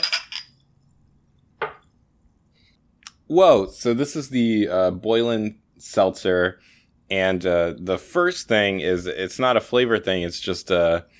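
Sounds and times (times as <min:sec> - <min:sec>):
glasses of seltzer clinking in a toast: 0:00.0 - 0:00.6
speech: 0:03.3 - 0:11.1.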